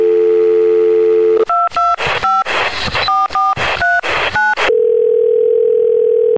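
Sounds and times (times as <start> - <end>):
telephone dial tone: 0.0 - 2.0, 4.7 - 6.3
touch-tone beeps dialing a movie theater phone hotline: 0.4 - 6.3.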